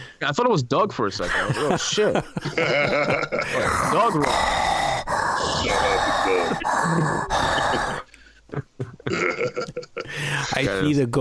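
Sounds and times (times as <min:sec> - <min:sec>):
close breathing right up against the microphone: 0:00.0 - 0:00.2, 0:03.4 - 0:08.5, 0:10.0 - 0:10.5
speech: 0:00.2 - 0:04.8, 0:05.6 - 0:11.1
laughter: 0:01.2 - 0:03.9, 0:05.5 - 0:10.4.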